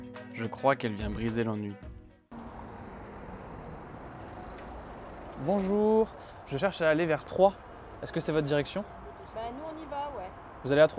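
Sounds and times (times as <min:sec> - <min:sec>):
speech: 0:00.4 - 0:01.9, 0:05.4 - 0:10.9
car engine humming at a toll booth: 0:02.3 - 0:06.5
vehicle and road noise as a car pulls up at a toll booth: 0:02.3 - 0:10.9.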